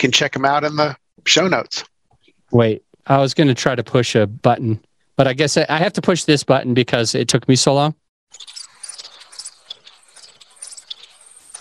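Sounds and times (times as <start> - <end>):
speech: 0.0 - 1.9, 2.5 - 8.5
crickets chirping: 8.3 - 11.5.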